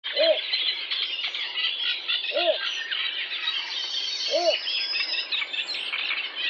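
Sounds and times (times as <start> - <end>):
little bittern croaking hoots: 0.1 - 0.4, 2.3 - 2.6
shrill bird chatter: 0.1 - 6.4.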